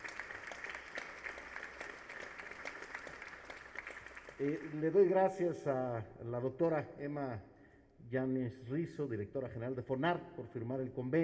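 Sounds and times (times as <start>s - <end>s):
audience applause: 0.0s - 5.2s
speech: 4.4s - 11.2s.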